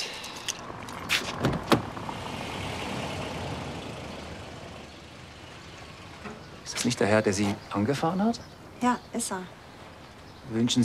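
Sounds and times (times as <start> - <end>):
car pulling up and parking: 0.4 - 8.6
steady low car engine rumble: 0.6 - 8.0
speech: 6.8 - 9.6, 10.5 - 10.8.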